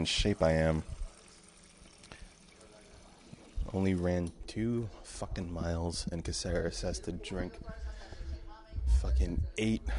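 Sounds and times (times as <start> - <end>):
speech: 0.0 - 0.9, 3.7 - 7.8, 8.9 - 9.9
water running from a tap: 0.0 - 4.2.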